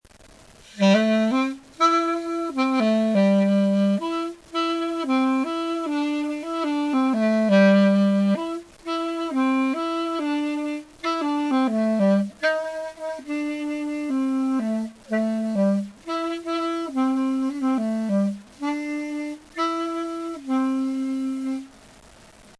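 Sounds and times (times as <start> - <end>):
saxophone: 0.6 - 21.8.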